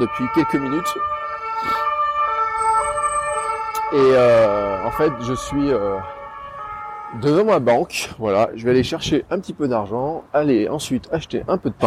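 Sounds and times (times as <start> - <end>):
speech: 0.0 - 1.9, 3.9 - 6.2, 7.1 - 11.8
fire engine siren wailing: 0.0 - 8.2
faint street rumble: 0.0 - 11.8.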